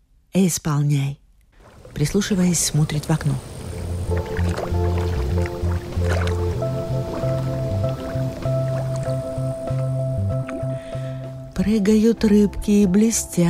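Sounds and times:
speech: 0.4 - 1.2, 2.0 - 4.8, 11.7 - 13.4
water sloshing and gurgling against glass: 1.6 - 9.4
soft squishy bubbling: 1.6 - 11.2
low rumbling tones: 1.6 - 13.4.

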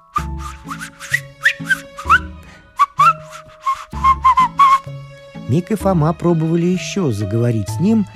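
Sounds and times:
person whistling a lively tune: 0.0 - 4.9
brushing or rubbing sounds: 0.4 - 2.2
speech: 5.5 - 8.1.

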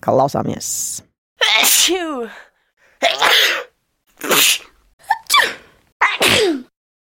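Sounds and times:
speech: 0.0 - 3.6, 4.3 - 4.7
person sneezing: 1.4 - 2.1, 3.0 - 6.7.

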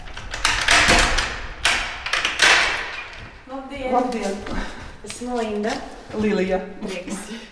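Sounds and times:
apartment door latch clicks and knocks: 0.0 - 3.4
dull thud of apartment door: 0.0 - 3.4
speech: 3.7 - 7.4.

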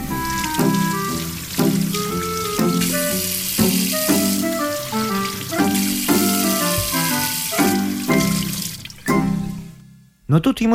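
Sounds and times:
water pouring into a pot on the fire for cooking oatmeal: 0.0 - 9.9
rhythmic melodic music track: 0.0 - 10.0
speech: 10.3 - 10.7.

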